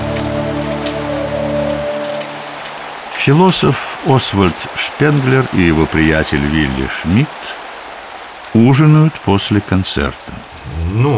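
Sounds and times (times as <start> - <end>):
low humming drone: 0.0 - 3.2
rain falling: 0.0 - 11.1
speech: 3.2 - 7.6, 8.5 - 11.1.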